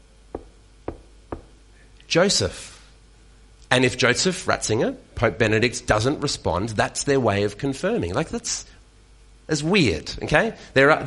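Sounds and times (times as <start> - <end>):
golden hammer knocking on a head: 0.3 - 1.6
speech: 2.1 - 2.7, 3.7 - 8.8, 9.5 - 11.0.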